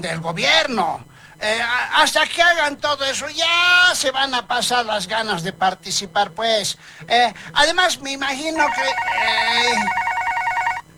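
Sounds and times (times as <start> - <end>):
speech: 0.0 - 10.0
telephone ringing with an incoming call: 8.6 - 10.9.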